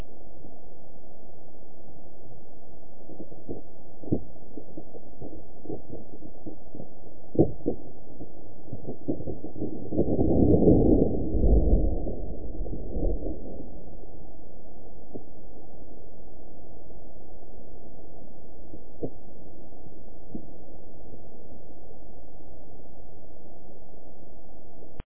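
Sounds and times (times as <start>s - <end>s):
iceberg: 3.4s - 15.3s.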